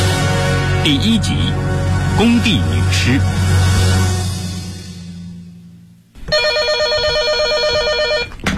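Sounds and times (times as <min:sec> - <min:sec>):
low sound: 0:00.1 - 0:08.4
speech: 0:00.9 - 0:03.4
telephone ringing late at night: 0:06.3 - 0:08.5.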